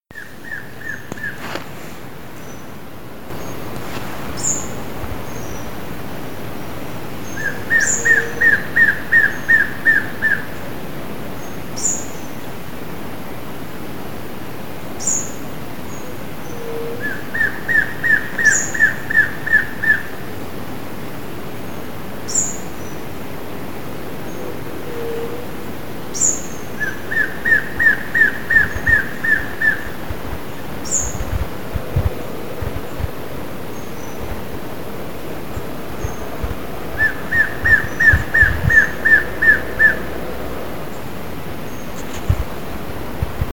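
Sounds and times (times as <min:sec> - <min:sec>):
Biatas nigropectus calling: 0:00.1 - 0:01.8, 0:03.3 - 0:05.9, 0:07.2 - 0:10.7, 0:15.9 - 0:20.3, 0:24.3 - 0:34.6, 0:35.4 - 0:41.0.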